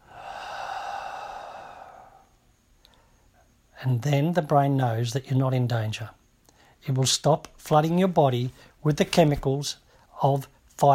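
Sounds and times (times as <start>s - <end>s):
deep breath during a breathing exercise: 0.0s - 3.5s
speech: 3.8s - 6.2s, 6.8s - 10.9s.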